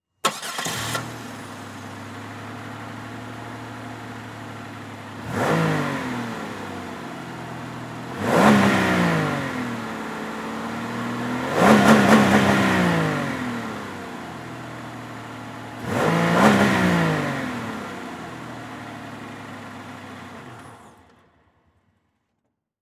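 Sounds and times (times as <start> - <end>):
car engine starting, idling, revving and switching off: 0.2 - 4.2, 5.1 - 14.5, 15.8 - 20.0.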